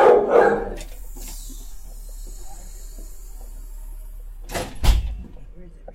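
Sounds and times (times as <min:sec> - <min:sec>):
small adopted dog barking: 0:00.0 - 0:00.8.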